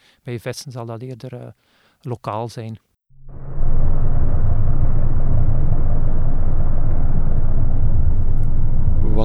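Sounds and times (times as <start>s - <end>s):
speech: 0.2s - 2.9s
distant ship engines rumbling underwater: 3.2s - 9.2s.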